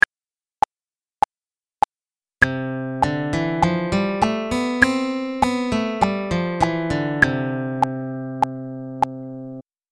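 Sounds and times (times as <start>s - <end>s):
C major scale played: 2.5s - 9.6s.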